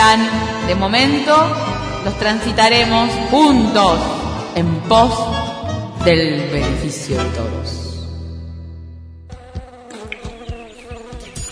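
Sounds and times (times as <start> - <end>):
speech: 0.1 - 7.8
mosquito buzzing: 9.3 - 11.5.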